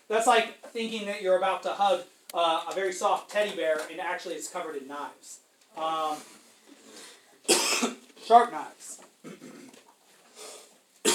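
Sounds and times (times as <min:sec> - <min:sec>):
speech: 0:00.1 - 0:09.4
person coughing: 0:07.5 - 0:08.0, 0:09.2 - 0:09.8.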